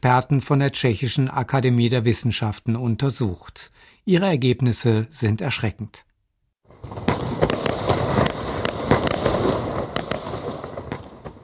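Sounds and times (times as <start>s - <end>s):
speech: 0.0s - 6.1s
fireworks rockets and firecrackers crackling: 6.7s - 11.4s
sharp firework bangs: 6.8s - 11.4s.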